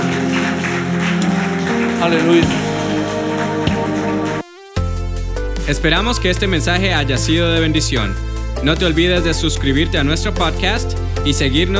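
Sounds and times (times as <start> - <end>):
audience applauding: 0.0 - 4.6
music: 0.0 - 11.7
speech: 2.0 - 2.6, 5.7 - 11.7.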